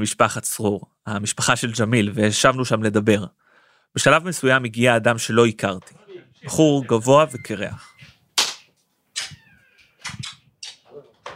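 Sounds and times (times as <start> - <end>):
speech: 0.0 - 7.9
soft murmured voices: 5.8 - 8.2
laughter: 5.9 - 8.2
kisses on the cheek in greeting: 8.4 - 10.9.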